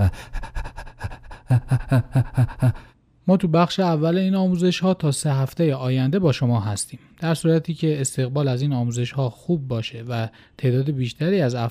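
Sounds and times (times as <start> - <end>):
person panting as a singing breathing exercise: 0.0 - 3.0
speech: 0.1 - 0.4, 1.5 - 11.6.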